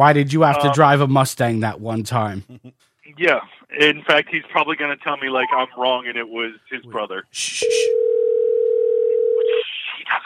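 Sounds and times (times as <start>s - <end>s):
speech: 0.0s - 8.2s
telephone ringback tone from a phone placing a call: 7.9s - 9.6s.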